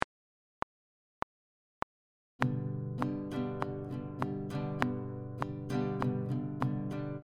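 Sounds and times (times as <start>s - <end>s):
easy strumming pattern on guitar: 2.4s - 7.2s.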